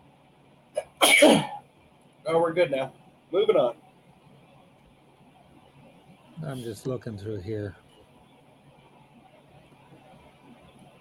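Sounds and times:
person sneezing after choking on a drink: 0:00.8 - 0:01.6
speech: 0:01.2 - 0:01.5, 0:02.3 - 0:03.8, 0:06.4 - 0:07.8.

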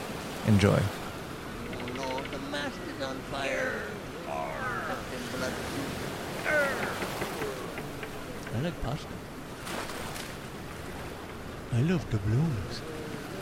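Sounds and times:
ocean surf: 0:00.0 - 0:13.3
speech: 0:00.4 - 0:01.0, 0:08.6 - 0:09.8, 0:11.7 - 0:12.9
rough voices shouting and calling out: 0:01.6 - 0:08.4.

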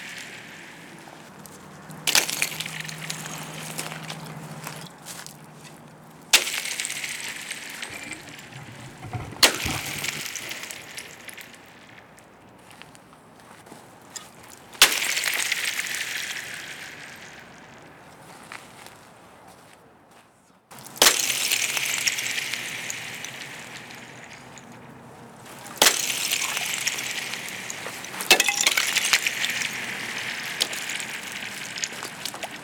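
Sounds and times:
ice blocks thrown into a frozen pond: 0:02.1 - 0:03.7, 0:06.4 - 0:11.6, 0:14.8 - 0:17.4, 0:20.8 - 0:24.7, 0:25.7 - 0:32.6.

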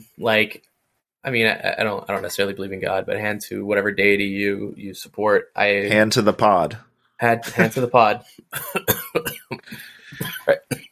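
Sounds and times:
speech: 0:00.2 - 0:10.8
sharp harsh coughing: 0:08.5 - 0:10.8.

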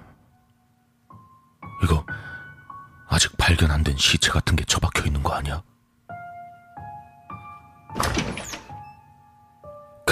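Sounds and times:
speech: 0:03.2 - 0:05.7
bathroom door pushed open with a heavy thunk and scraping rush: 0:07.9 - 0:09.0.

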